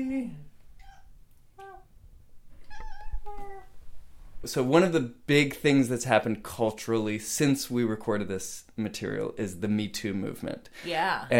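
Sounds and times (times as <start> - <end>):
cat meowing: 2.6 - 3.7
speech: 4.4 - 11.3.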